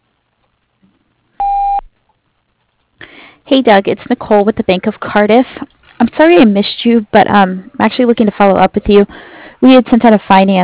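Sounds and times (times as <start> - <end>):
voicemail message tone beep: 1.4 - 1.9
speech: 3.5 - 10.6.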